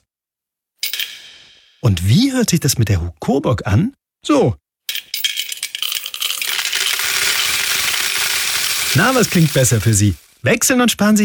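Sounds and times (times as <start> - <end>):
speech: 1.8 - 4.6, 9.0 - 11.2
coins rattling in a shaken piggy bank: 5.0 - 10.2.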